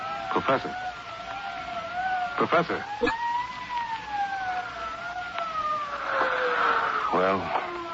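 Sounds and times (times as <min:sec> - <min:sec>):
police siren wailing: 0:00.0 - 0:07.9
speech: 0:00.4 - 0:01.0, 0:02.4 - 0:03.3, 0:07.2 - 0:07.6.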